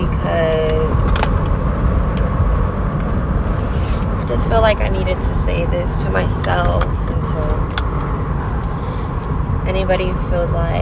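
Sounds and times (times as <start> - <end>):
loud interior noise of a moving car with steady road roar: 0.0 - 10.8
speech: 4.4 - 7.8, 9.7 - 10.8.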